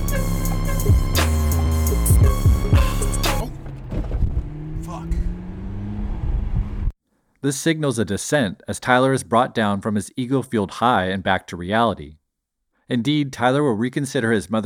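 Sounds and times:
music: 0.0s - 3.6s
McLaren sports car engine roaring and revving while speeding: 0.0s - 6.9s
sports car low rumbling drive: 0.0s - 6.9s
sports car hitting a large pothole: 3.5s - 4.7s
speech: 7.4s - 12.2s, 12.9s - 14.6s.

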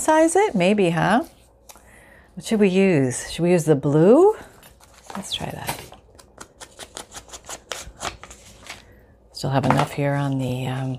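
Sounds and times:
speech: 0.1s - 1.4s, 2.4s - 4.5s, 5.2s - 5.8s, 9.4s - 10.9s
paper being handled, crinkling and rustling: 4.7s - 9.0s.

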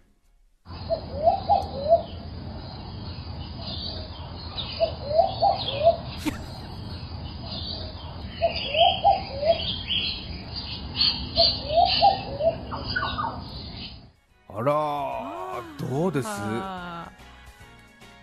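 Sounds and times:
insect hum: 0.7s - 14.1s
tropical birds hooting in Cairns, Australia: 0.7s - 17.1s
dove-like cooing phrase: 0.9s - 2.1s, 4.8s - 6.1s, 8.4s - 10.0s, 11.3s - 13.4s
speech: 16.2s - 16.8s.

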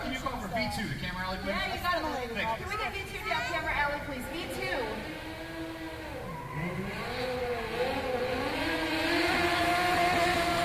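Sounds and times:
speech: 0.7s - 5.1s
modified car engine revving while driving up fast: 3.6s - 10.6s.

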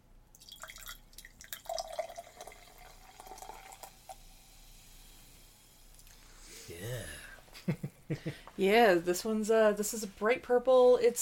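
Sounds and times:
soda pouring into a glass: 0.3s - 5.8s
crackly fizz of soda bubbles: 0.4s - 4.9s
speech: 6.8s - 11.2s.

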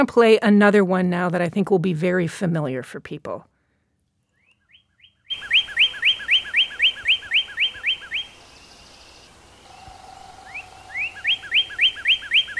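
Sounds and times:
speech: 0.0s - 3.5s
male northern cardinal singing whistled phrases: 4.4s - 12.5s.

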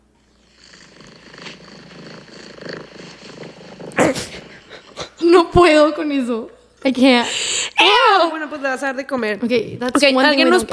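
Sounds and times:
cat purring: 0.4s - 5.2s
speech: 5.3s - 10.7s.

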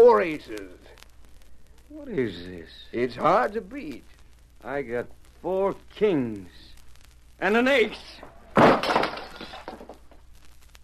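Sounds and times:
speech: 0.0s - 1.0s, 1.9s - 6.7s, 7.4s - 9.3s
glass breaking: 8.2s - 10.1s
lamp crashing to the floor after a table is kicked: 8.5s - 10.2s
scattered glass bits tinkling and settling: 8.8s - 9.9s.

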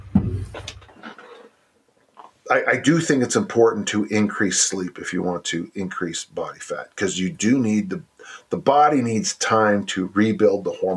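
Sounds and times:
door swinging shut with a soft low thud: 0.0s - 0.9s
speech: 2.5s - 10.9s.

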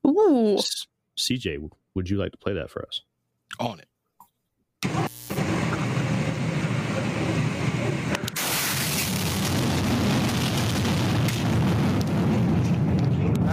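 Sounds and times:
speech: 0.3s - 3.9s
meteor exploding overhead over Russia: 5.3s - 13.5s.

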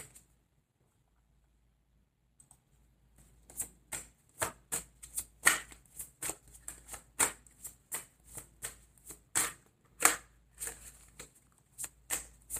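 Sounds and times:
tarot cards being shuffled and drawn: 5.0s - 12.5s.

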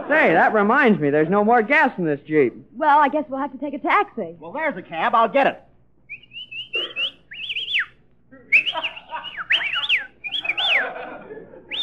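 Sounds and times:
laughter: 0.0s - 0.6s, 8.3s - 11.8s
speech: 0.1s - 5.7s
people whistling back and forth: 6.1s - 11.1s, 11.7s - 11.8s.

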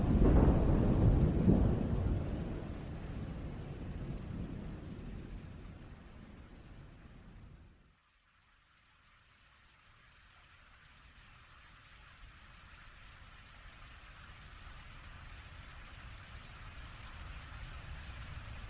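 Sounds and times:
loud low rumble of intense thunder: 0.0s - 7.8s
heavy rain in a severe thunderstorm: 0.0s - 7.9s, 11.2s - 18.6s.

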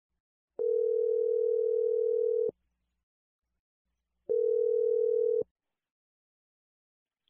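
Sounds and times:
telephone ringback tones: 0.6s - 2.5s, 4.3s - 5.4s.

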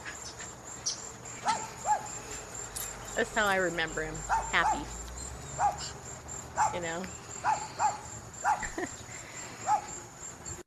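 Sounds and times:
recorded dog barking: 1.4s - 2.2s, 4.2s - 5.0s, 5.6s - 6.0s, 6.6s - 6.8s, 7.4s - 8.8s, 9.6s - 10.0s
speech: 3.2s - 5.0s, 6.7s - 9.0s.

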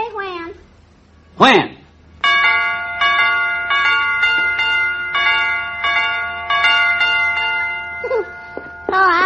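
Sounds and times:
speech: 1.4s - 1.8s
electronic doorbell chiming: 2.2s - 9.2s.

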